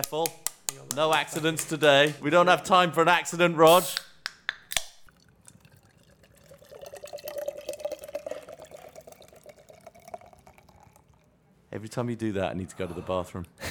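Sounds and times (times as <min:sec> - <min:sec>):
speech: 0:00.0 - 0:04.1, 0:11.8 - 0:13.6
can of Guinness being opened: 0:03.7 - 0:05.2
Guinness beer pouring and gurgling into a glass: 0:05.0 - 0:11.4.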